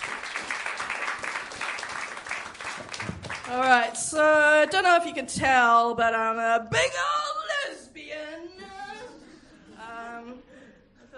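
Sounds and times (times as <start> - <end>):
small live audience applauding at a storytelling event: 0.0 - 3.7
speech: 3.5 - 7.2.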